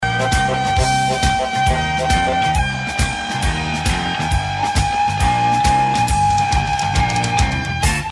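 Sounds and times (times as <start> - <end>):
harmonica growl: 0.0 - 8.0.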